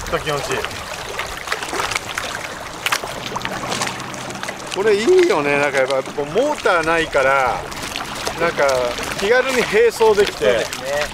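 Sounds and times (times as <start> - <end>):
small motorless kayak-like boat hull pattering and splashing across lake water: 0.0 - 11.1
speech: 0.1 - 0.9, 4.8 - 7.8, 8.4 - 11.1.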